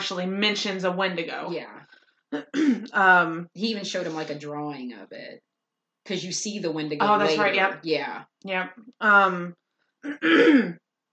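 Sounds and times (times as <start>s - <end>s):
speech: 0.0s - 10.8s
person clearing throat from phlegm due to spring allergies and pollen: 2.4s - 2.8s, 10.0s - 10.8s.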